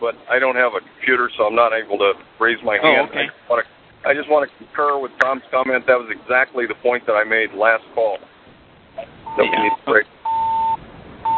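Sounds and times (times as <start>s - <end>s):
brief voice fragments: 0.0s - 8.2s, 9.0s - 10.1s
speech: 0.0s - 8.3s, 9.0s - 10.1s
busy-signal tone beeping: 9.3s - 11.3s.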